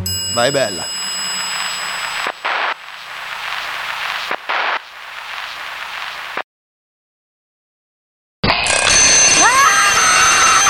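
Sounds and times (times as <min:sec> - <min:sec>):
alarm clock bell ringing: 0:00.1 - 0:02.2, 0:08.6 - 0:10.6
harsh noisy bursts: 0:00.3 - 0:06.4
speech: 0:00.4 - 0:01.0.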